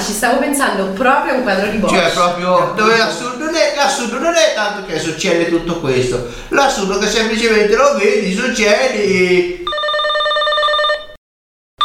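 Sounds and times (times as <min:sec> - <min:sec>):
speech: 0:00.1 - 0:09.9
telephone ringing with an electronic trill: 0:09.6 - 0:11.2.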